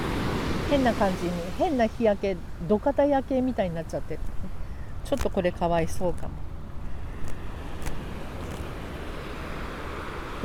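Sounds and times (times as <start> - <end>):
ocean surf rushing: 0.0 - 3.7, 6.6 - 10.4
speech: 0.7 - 6.5.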